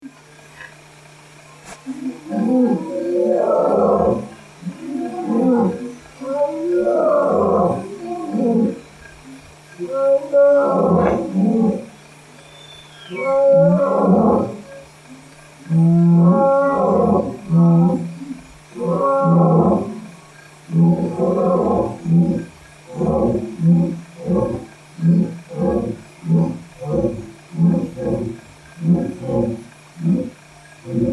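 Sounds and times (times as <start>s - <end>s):
lion roaring in Africa: 1.9s - 11.9s, 13.1s - 14.9s, 15.6s - 31.1s.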